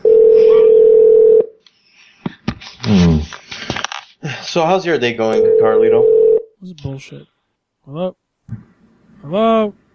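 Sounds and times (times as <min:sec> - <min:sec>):
telephone dial tone: 0:00.0 - 0:01.5
speech: 0:04.5 - 0:09.8.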